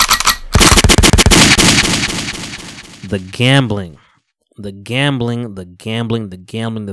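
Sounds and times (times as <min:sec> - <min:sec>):
loud rapid burst of gunfire: 0:00.0 - 0:03.4
speech: 0:03.1 - 0:04.0, 0:04.6 - 0:06.9.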